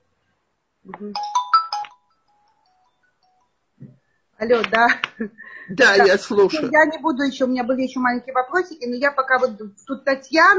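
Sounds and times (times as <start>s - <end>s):
speech: 0.8s - 1.4s, 4.4s - 10.5s
electronic phone ringtone melody on outgoing call: 1.2s - 3.5s.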